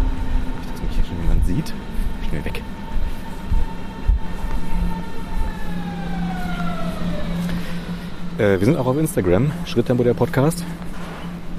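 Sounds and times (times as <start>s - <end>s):
low rumbling thumps from the tracks: 0.0s - 4.8s
S-Bahn commuter train electric motors whining: 0.0s - 11.5s
speech: 1.5s - 2.6s, 8.4s - 10.8s.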